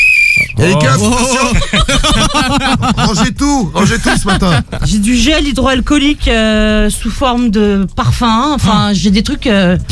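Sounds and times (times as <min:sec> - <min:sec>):
short shrill blast from a small whistle: 0:00.0 - 0:00.6
speech: 0:00.6 - 0:09.9
people laughing and chattering: 0:00.7 - 0:05.1.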